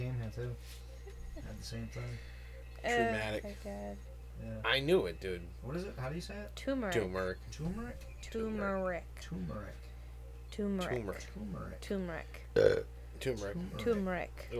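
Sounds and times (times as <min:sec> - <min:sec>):
speech: 0:01.4 - 0:09.9, 0:10.5 - 0:14.5
loud burp: 0:12.6 - 0:12.9.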